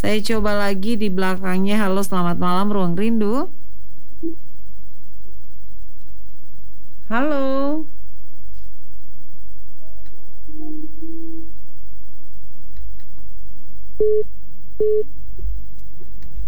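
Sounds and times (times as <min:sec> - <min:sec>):
speech: 0:00.0 - 0:03.6, 0:04.2 - 0:04.4, 0:07.1 - 0:08.0, 0:14.0 - 0:15.2
low hum on a telephone line: 0:00.0 - 0:16.4
loud sharp telephone beeps: 0:14.0 - 0:15.1
telephone line tones from a failed incoming call: 0:14.0 - 0:15.1.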